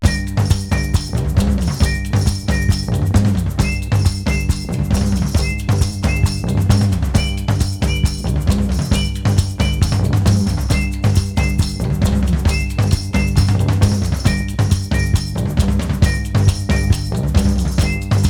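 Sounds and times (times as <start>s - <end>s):
bass: 0.0s - 18.2s.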